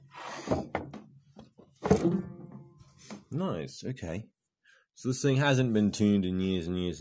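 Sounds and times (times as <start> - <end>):
piano lid being lifted with wooden thunks: 1.8 - 2.8
speech: 3.3 - 4.4, 5.0 - 6.9.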